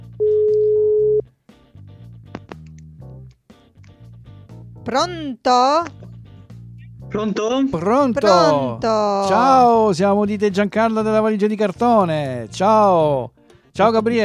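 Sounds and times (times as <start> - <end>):
phone ringback tone: 0.2 - 1.2
speech: 4.8 - 6.0, 7.1 - 14.2.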